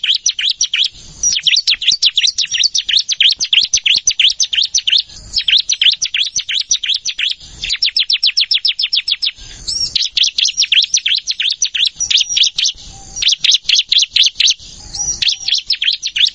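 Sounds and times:
Plain Prinia song of rapid high chirping notes: 0:00.0 - 0:16.3.

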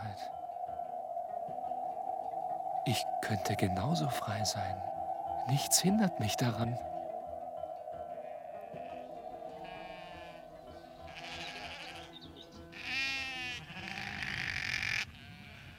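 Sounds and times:
steady low drone: 0:00.0 - 0:12.7
speech: 0:02.8 - 0:06.9
small flock of sheep bleating: 0:08.7 - 0:15.7.

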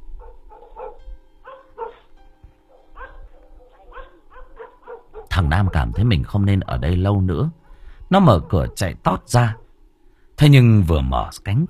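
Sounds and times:
dog barking furiously: 0:00.2 - 0:02.1, 0:02.7 - 0:06.3, 0:08.3 - 0:09.7
speech: 0:05.4 - 0:09.6, 0:10.4 - 0:11.6.

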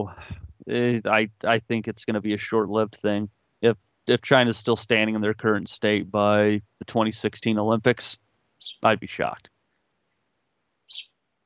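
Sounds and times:
speech: 0:00.0 - 0:09.5, 0:10.9 - 0:11.1
bird chirp outside a window: 0:08.6 - 0:09.0, 0:10.9 - 0:11.2.

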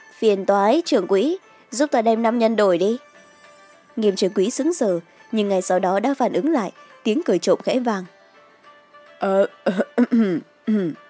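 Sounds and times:
speech: 0:00.2 - 0:03.1, 0:04.0 - 0:08.2, 0:09.2 - 0:11.0
light coughing or throat clearing voiced by a narrator: 0:09.6 - 0:11.0.

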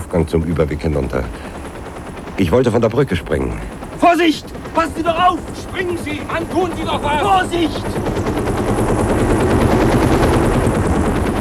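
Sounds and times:
helicopter rotor roar as the aircraft tips forward: 0:00.0 - 0:11.3
speech: 0:00.1 - 0:01.6, 0:02.4 - 0:08.9.

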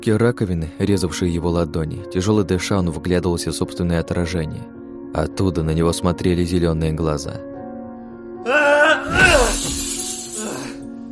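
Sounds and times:
speech: 0:00.0 - 0:07.5, 0:08.4 - 0:09.4
glass debris scattering: 0:09.2 - 0:10.6
mirror glass smashed by a fist: 0:09.2 - 0:10.9.

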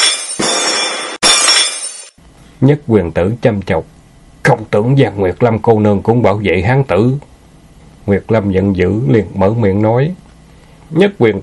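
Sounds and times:
teacups falling and shattering: 0:00.0 - 0:02.2
speech: 0:02.6 - 0:07.3, 0:08.0 - 0:10.2, 0:10.9 - 0:11.4.

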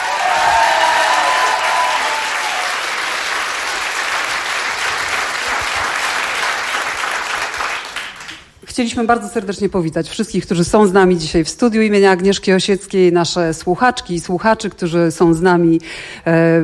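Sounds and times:
loud sustained applause from a studio audience: 0:00.0 - 0:08.5
speech: 0:08.8 - 0:16.6.

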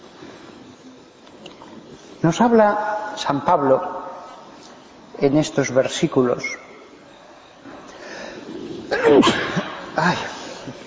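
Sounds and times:
speech: 0:02.2 - 0:04.0, 0:05.2 - 0:06.6, 0:09.1 - 0:10.3
person sneezing: 0:08.9 - 0:10.4.

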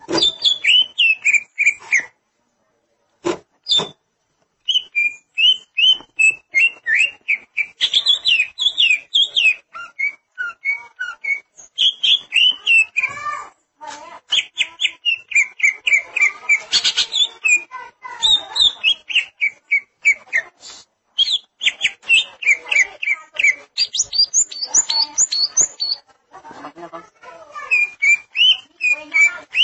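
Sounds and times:
greater green leafbird singing: 0:00.1 - 0:02.1, 0:04.6 - 0:13.2, 0:14.3 - 0:20.5, 0:21.2 - 0:26.0, 0:27.6 - 0:29.6.

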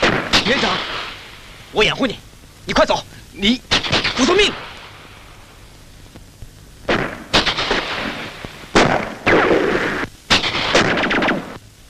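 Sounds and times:
fierce gunfire in a battle scene: 0:00.0 - 0:01.2, 0:03.7 - 0:04.7, 0:06.9 - 0:11.6
speech: 0:01.7 - 0:04.7.

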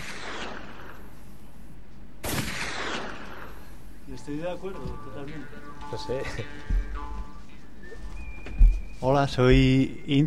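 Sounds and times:
gunshot fired into the air: 0:00.0 - 0:01.1, 0:02.2 - 0:03.7
speech: 0:04.2 - 0:06.9, 0:09.0 - 0:10.2.

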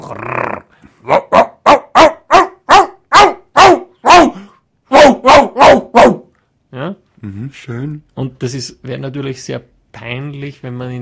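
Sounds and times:
person imitating a dog barking and growling at a cat: 0:00.0 - 0:06.3
speech: 0:00.1 - 0:00.4, 0:07.5 - 0:10.9.

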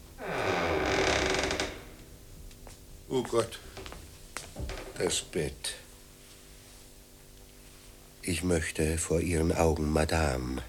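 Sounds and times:
door creaking slowly open: 0:00.1 - 0:02.0, 0:04.6 - 0:05.1
speech: 0:03.1 - 0:03.7, 0:05.0 - 0:05.8, 0:08.2 - 0:10.6.

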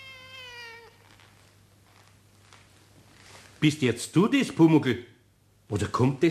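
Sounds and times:
cat meowing in a quiet workshop: 0:00.0 - 0:01.3
low steady hum: 0:00.0 - 0:06.2
speech: 0:03.6 - 0:05.1, 0:05.7 - 0:06.2.

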